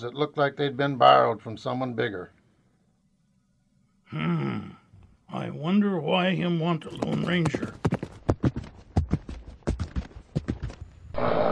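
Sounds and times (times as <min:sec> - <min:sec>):
speech: 0:00.0 - 0:02.4, 0:04.1 - 0:07.8
horse hooves clip-clopping: 0:06.8 - 0:11.1.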